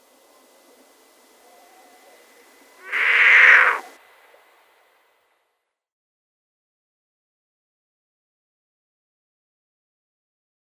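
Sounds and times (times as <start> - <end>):
Marsh owl giving a drawn-out raspy hiss: 0.0 - 4.5.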